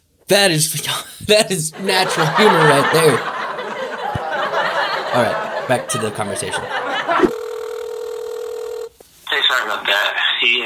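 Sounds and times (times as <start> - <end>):
speech: 0.3 - 3.3, 5.2 - 7.4, 9.6 - 10.6
laughter: 1.7 - 7.3
phone ringing tone while a dropped call reconnects: 7.2 - 9.0.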